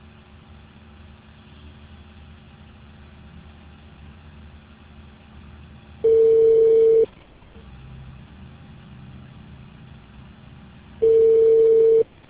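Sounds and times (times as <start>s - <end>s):
faint low hum: 0.0s - 12.2s
telephone busy signal beeps on a call to a mobile user: 6.1s - 7.1s, 11.0s - 12.1s.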